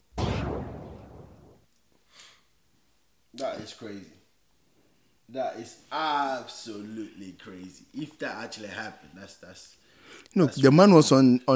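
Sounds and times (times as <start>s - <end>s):
gunshot-like blast with decaying rumble: 0.0s - 1.6s
speech: 3.4s - 4.2s, 5.3s - 11.5s.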